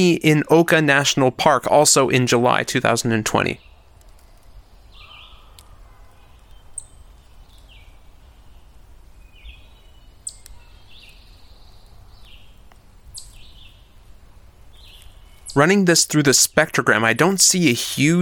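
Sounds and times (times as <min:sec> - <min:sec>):
speech: 0:00.0 - 0:03.7, 0:15.6 - 0:18.1
steady low outdoor rumble: 0:00.0 - 0:18.1
bird calls and chirps from the forest canopy: 0:03.4 - 0:14.0, 0:14.7 - 0:15.7.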